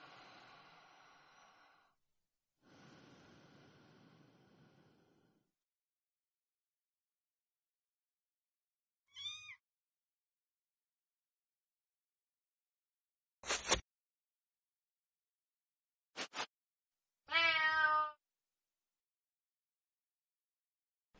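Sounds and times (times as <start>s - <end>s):
cat meowing: 9.1s - 9.6s, 17.3s - 18.2s.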